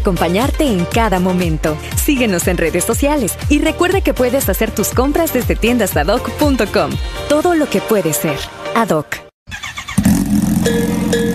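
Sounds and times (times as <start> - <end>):
speech: 0.0 - 9.2, 10.6 - 11.3
motorcycle engine starting and revving: 9.5 - 11.3.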